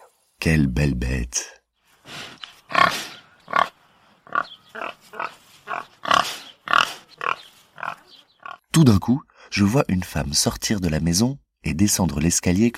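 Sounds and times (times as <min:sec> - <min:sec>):
speech: 0:00.4 - 0:02.9, 0:08.8 - 0:12.7
pigs grunting and snorting: 0:02.1 - 0:08.7.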